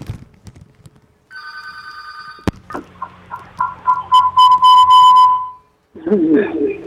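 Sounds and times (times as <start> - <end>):
electronic telephone ring for an incoming call: 1.3 - 5.7
tonal beeps and whistles: 3.3 - 5.7.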